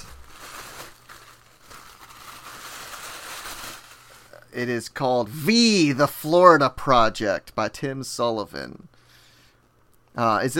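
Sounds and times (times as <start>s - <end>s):
wrapping paper crinkling as a book-shaped holiday gift is unwrapped: 0.0s - 4.6s
speech: 4.6s - 8.9s, 10.2s - 10.5s.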